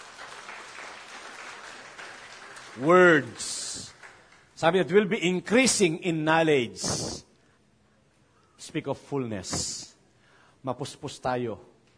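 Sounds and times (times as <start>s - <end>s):
church congregation applauding during a sermon: 0.0s - 4.9s
speech: 2.8s - 3.6s, 4.6s - 7.3s, 8.6s - 9.9s, 10.6s - 11.7s.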